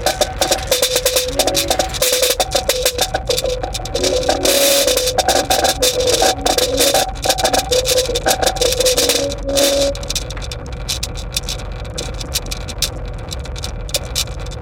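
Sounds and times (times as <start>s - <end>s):
wavering mid-pitched synth tones: 0.0s - 10.2s
metal film tins rattling with nails and ball bearings on speakers: 0.0s - 14.6s.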